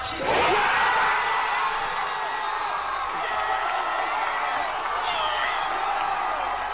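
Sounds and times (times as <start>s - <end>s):
large crowd at a big-screen watch party in Canberra cheering an Australia win: 0.1s - 6.7s.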